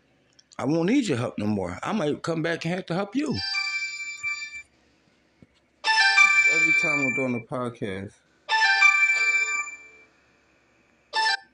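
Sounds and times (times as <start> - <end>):
speech: 0.6 - 3.6, 6.8 - 8.3
mobile phone ringtone: 3.2 - 4.6, 5.8 - 7.4, 8.5 - 10.1, 11.2 - 11.5.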